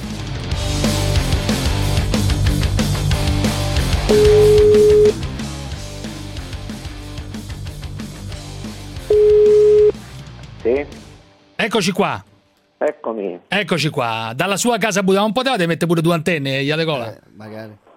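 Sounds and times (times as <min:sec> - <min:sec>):
busy music: 0:00.0 - 0:16.2
telephone ringback tone calling a home phone number: 0:04.1 - 0:05.2, 0:09.1 - 0:09.9
speech: 0:11.6 - 0:17.8.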